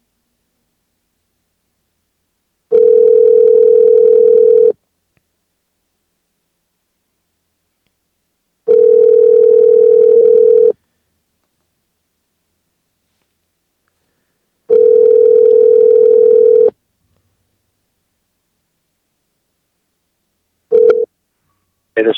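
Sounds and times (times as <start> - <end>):
outgoing phone call ringback tone: 2.7 - 4.8, 8.7 - 10.8, 14.7 - 16.7, 20.7 - 21.1.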